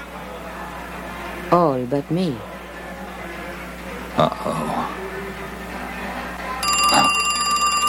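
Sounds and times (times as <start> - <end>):
speech: 1.5 - 2.5, 4.2 - 4.7
telephone ringing in a phone booth: 6.6 - 7.8.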